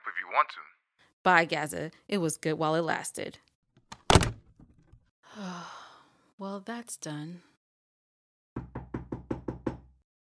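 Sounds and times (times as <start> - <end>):
speech: 0.1 - 3.5, 6.4 - 7.5
knocking on a door: 8.6 - 10.0.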